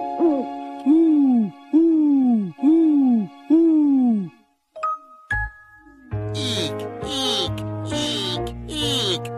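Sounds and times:
voice imitating owl hoots: 0.2 - 4.4, 6.3 - 9.3.

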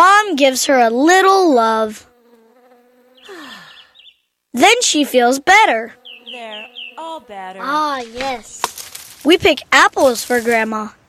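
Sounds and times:
speech: 0.4 - 2.1, 4.5 - 11.0
bee buzzing: 1.4 - 9.2.

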